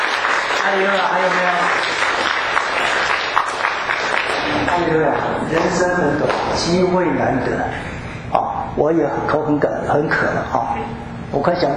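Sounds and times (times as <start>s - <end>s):
audience applause at a Christian church service for a baptism: 0.0s - 5.2s
speech: 0.6s - 2.0s, 4.7s - 11.7s.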